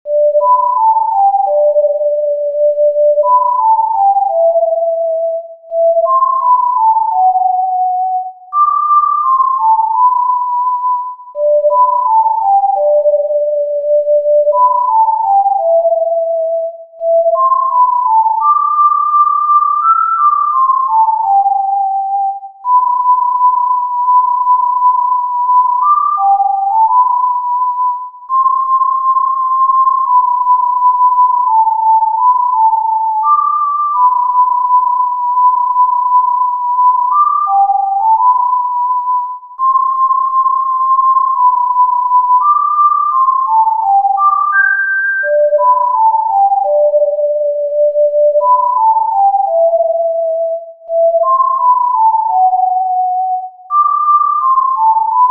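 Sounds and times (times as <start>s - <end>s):
tin whistle melody in G major: 0.0s - 55.2s.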